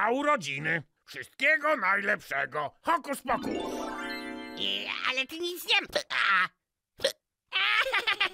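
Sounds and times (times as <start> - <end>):
speech: 0.0 - 4.0, 4.6 - 7.2
person hiccuping: 7.0 - 7.2.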